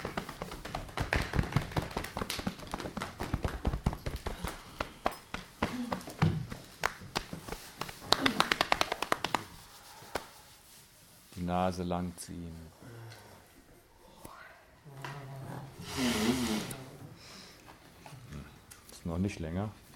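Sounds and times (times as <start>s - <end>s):
person's hands patting and tapping on their own body in a wake-up exercise: 0.0s - 10.4s
speech: 11.6s - 12.8s, 19.2s - 19.8s.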